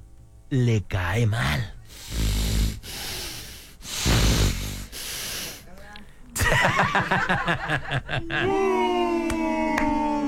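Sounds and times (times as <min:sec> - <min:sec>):
speech: 0:00.5 - 0:01.8, 0:06.7 - 0:09.1
human voice imitating heavy snorting breathing: 0:01.9 - 0:05.7
person making voiced grunting and chuckling sounds: 0:06.4 - 0:10.2.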